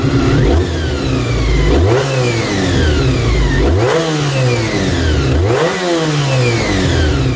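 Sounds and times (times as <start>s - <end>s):
Honda NC30 V4 motorcycle engine with cam-driven gears revving: 0.0s - 7.3s.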